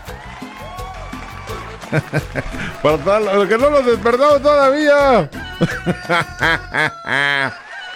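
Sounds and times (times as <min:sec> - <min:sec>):
laughter: 0:01.8 - 0:07.9
speech: 0:01.9 - 0:07.6
rooster crowing in the morning: 0:05.4 - 0:07.9.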